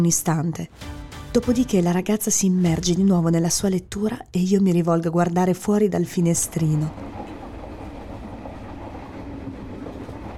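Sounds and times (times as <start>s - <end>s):
speech: 0.0s - 7.0s
train carriage running on rails: 6.1s - 10.3s.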